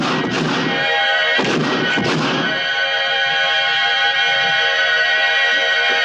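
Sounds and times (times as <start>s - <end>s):
booming gunshots fired at a door in a stone fortress courtyard: 0.0s - 3.4s
steady tonal drone: 0.0s - 6.0s.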